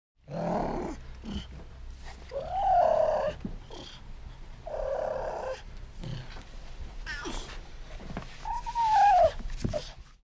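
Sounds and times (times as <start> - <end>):
cougar cubs purring: 0.2 - 6.5
cougar cubs whining: 2.2 - 4.0, 4.6 - 5.7, 8.4 - 10.0.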